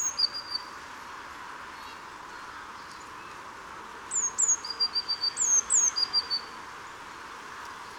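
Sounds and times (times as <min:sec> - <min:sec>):
Eurasian blue tit call Cyanistes caeruleus: 0:00.0 - 0:00.8, 0:01.7 - 0:03.5, 0:04.1 - 0:06.6
low hiss: 0:00.0 - 0:07.9.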